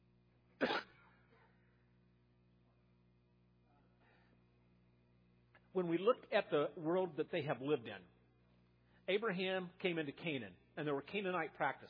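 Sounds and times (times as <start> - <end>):
single short harsh cough: 0.6 - 1.6
speech: 5.8 - 8.2, 9.1 - 11.8.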